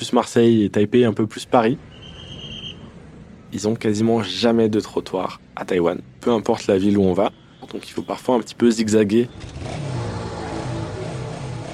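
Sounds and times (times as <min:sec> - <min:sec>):
speech: 0:00.0 - 0:01.9, 0:03.5 - 0:09.9
street traffic in a city in Taiwan: 0:00.0 - 0:11.7
many motorcycles revving in a city in Taiwan: 0:09.2 - 0:11.7.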